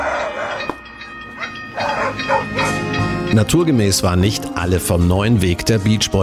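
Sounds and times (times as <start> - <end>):
dogs barking: 0.0 - 3.1
speech: 3.3 - 6.2.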